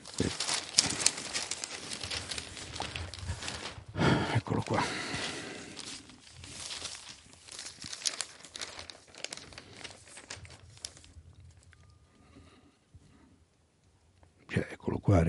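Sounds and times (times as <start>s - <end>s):
newspaper pages being handled and turned: 0.0s - 12.0s.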